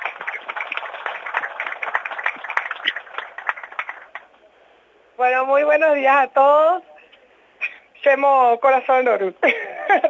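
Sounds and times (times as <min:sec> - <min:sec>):
crowd applause: 0:00.0 - 0:04.4
speech: 0:05.2 - 0:06.9, 0:08.0 - 0:10.0.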